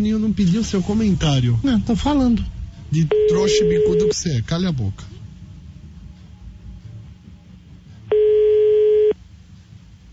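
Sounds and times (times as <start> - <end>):
speech: 0.0 - 5.2
low rumbling background: 0.0 - 10.1
telephone dial tone while placing a call: 3.1 - 4.2, 8.1 - 9.2.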